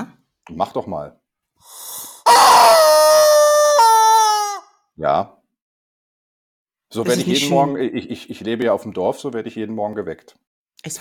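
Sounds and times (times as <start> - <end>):
speech: 0.6 - 2.7, 5.0 - 5.4, 6.9 - 10.9
rubber chicken toy squawking: 2.2 - 4.8.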